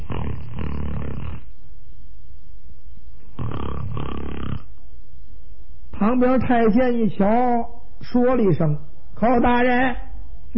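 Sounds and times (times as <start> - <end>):
voice imitating loud rasping snoring of a man asleep: 0.0 - 1.5, 3.4 - 4.7
speech: 6.0 - 10.5.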